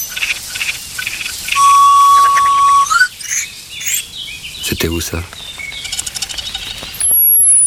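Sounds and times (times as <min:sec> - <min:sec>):
common whitethroat scratchy chattering: 0:00.1 - 0:07.6
common whitethroat thin steady high whistle: 0:01.5 - 0:04.0
speech: 0:04.8 - 0:05.5.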